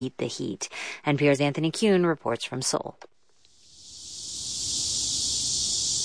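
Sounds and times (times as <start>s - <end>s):
speech: 0.0s - 3.1s
cicadas buzzing in the midday heat in South Korea: 3.4s - 6.0s.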